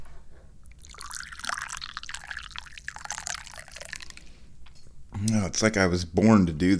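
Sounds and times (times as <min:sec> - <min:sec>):
tea pouring into a cup: 0:00.6 - 0:04.6
speech: 0:05.2 - 0:06.7.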